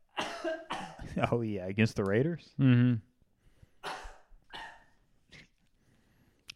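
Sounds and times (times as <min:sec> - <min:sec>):
person coughing: 0:00.1 - 0:01.2, 0:03.8 - 0:05.0
speech: 0:00.4 - 0:03.1.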